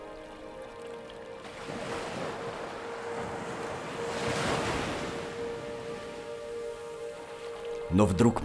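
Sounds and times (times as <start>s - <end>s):
ocean surf washing in: 1.4s - 7.2s
speech: 7.9s - 8.4s.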